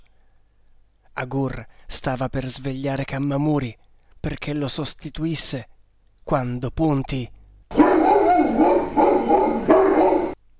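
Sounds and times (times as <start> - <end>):
speech: 1.2 - 5.7, 6.3 - 7.8
dog barking facing a river: 7.7 - 10.4.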